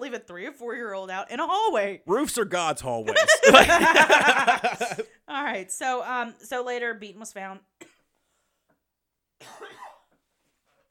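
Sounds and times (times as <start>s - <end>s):
speech: 0.1s - 7.8s, 9.4s - 9.8s
laughter: 2.6s - 5.0s
person coughing: 3.2s - 5.0s, 9.4s - 10.0s.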